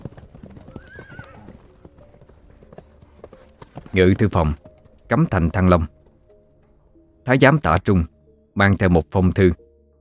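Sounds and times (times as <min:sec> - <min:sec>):
horse whinnying: 0:00.0 - 0:01.8
horse hooves trotting: 0:00.0 - 0:06.7
speech: 0:03.9 - 0:06.0, 0:07.2 - 0:09.6.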